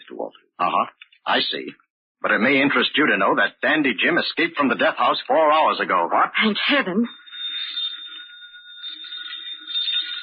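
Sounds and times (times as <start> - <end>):
speech: 0.2 - 7.8
telephone bell ringing: 6.9 - 10.2.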